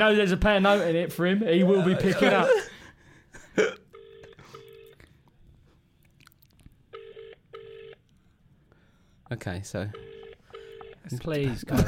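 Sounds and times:
speech: 0.0s - 2.7s, 3.6s - 3.8s, 9.3s - 10.1s, 11.1s - 11.8s
laughter: 0.7s - 3.6s
phone ringback tone over a loudspeaker: 4.0s - 5.0s, 6.9s - 8.0s, 9.9s - 11.1s.

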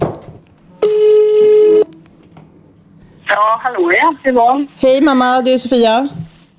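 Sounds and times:
electronic phone call ringback tone: 0.8s - 1.9s
speech: 3.4s - 6.2s.

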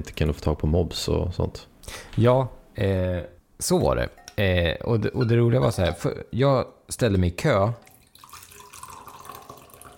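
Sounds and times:
speech: 0.0s - 7.9s
coffee pouring into a cup: 7.8s - 9.9s.

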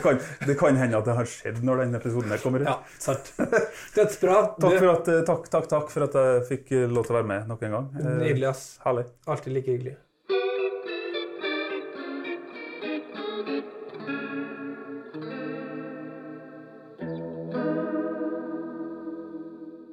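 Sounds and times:
speech: 0.0s - 10.0s
laughter: 2.2s - 4.4s
slightly overdriven Gibson Les Paul Custom electric guitar playing chorus-drenched chords: 10.3s - 19.9s.

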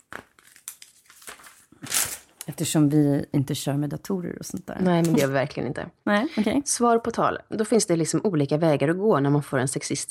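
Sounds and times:
paper rustling and crinkling: 0.0s - 2.5s
speech: 2.5s - 10.0s.

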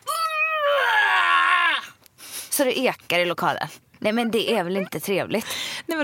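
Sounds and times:
voice imitating a woman's loud strained scream during a gym workout class: 0.0s - 2.0s
speech: 2.6s - 6.0s.

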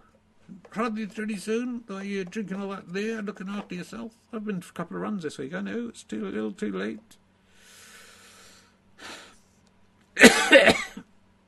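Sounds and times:
speech: 0.5s - 7.2s, 10.2s - 10.8s
man coughing: 10.2s - 11.1s.

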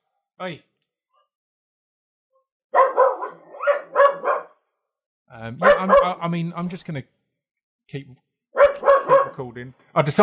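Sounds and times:
speech: 0.4s - 0.7s, 5.4s - 7.2s, 7.9s - 8.3s, 9.4s - 10.2s
dogs barking: 2.7s - 4.6s, 5.6s - 6.2s, 8.6s - 9.5s.

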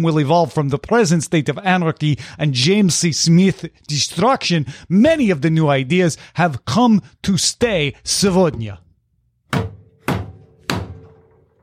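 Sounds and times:
speech: 0.0s - 8.8s
fist or hand banging on a wooden table: 9.5s - 11.6s.

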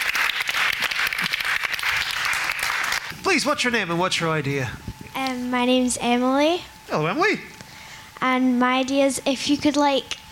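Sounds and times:
live audience applauding a contestant: 0.0s - 3.1s
speech: 3.3s - 7.5s, 8.2s - 10.2s.

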